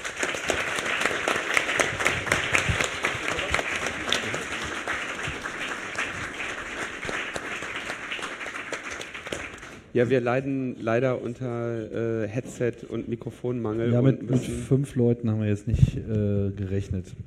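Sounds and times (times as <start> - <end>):
audience applause: 0.0 - 9.9
speech: 10.0 - 17.2.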